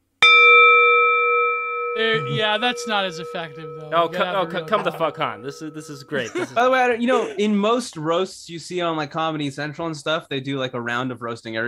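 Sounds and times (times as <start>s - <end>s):
gong strike: 0.3s - 6.6s
speech: 2.0s - 11.6s
laughter: 4.0s - 7.6s.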